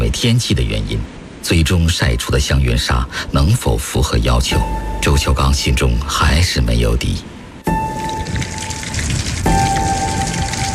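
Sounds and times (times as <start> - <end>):
speech: 0.1 - 7.3
steady rain pattering on hard surfaces: 7.7 - 10.7.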